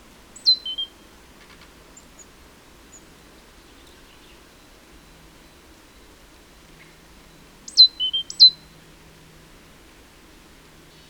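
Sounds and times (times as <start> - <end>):
Great tit Parus major calls: 0.4 - 5.7, 6.7 - 8.8.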